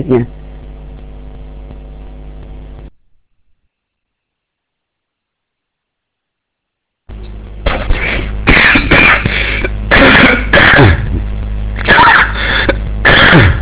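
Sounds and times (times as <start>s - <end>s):
speech: 0.0s - 0.4s
steady hum: 0.0s - 13.6s
Buddhist monk coughing: 7.7s - 11.2s, 11.8s - 13.6s.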